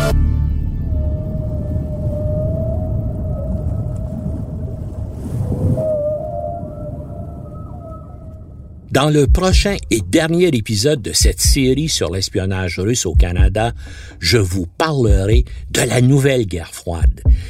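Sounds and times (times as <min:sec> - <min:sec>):
deep ocean rumble: 0:00.1 - 0:10.1
whale calls recorded by deep-sea hydrophones under the North Atlantic: 0:00.7 - 0:08.9
speech: 0:09.0 - 0:17.4.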